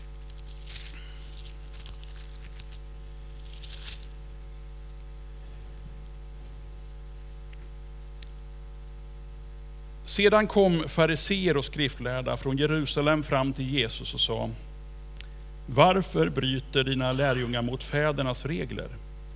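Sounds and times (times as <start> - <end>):
thin Bible pages flipped through: 0.0 - 5.1
steady low electrical hum: 0.0 - 19.3
speech: 10.1 - 14.7, 15.7 - 19.0.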